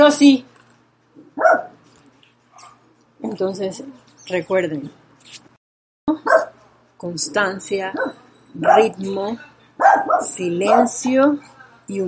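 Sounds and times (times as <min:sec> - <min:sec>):
speech: 0:00.0 - 0:00.5, 0:01.4 - 0:01.7, 0:03.2 - 0:05.5, 0:06.1 - 0:12.0
small dog barking: 0:01.4 - 0:01.8, 0:06.2 - 0:06.6, 0:07.9 - 0:09.0, 0:09.8 - 0:11.0.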